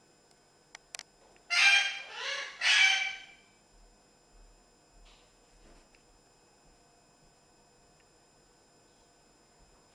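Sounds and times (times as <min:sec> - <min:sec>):
parrot giving harsh grating squawk: 0:01.5 - 0:03.4.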